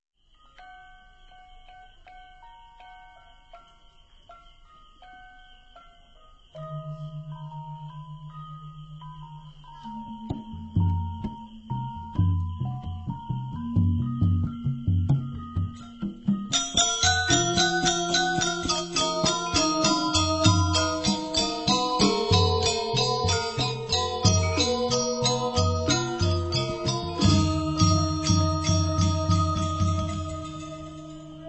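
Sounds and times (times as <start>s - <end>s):
Semarpegulingan gamelan ensemble playing: 6.6s - 31.4s.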